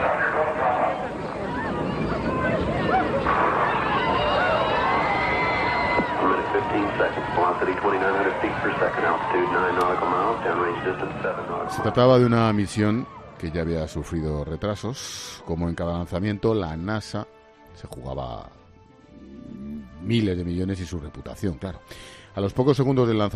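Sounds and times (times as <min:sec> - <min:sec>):
crowd of relatives screaming and crying at shuttle explosion: 0:00.0 - 0:12.2
speech: 0:07.0 - 0:18.6, 0:20.0 - 0:23.3.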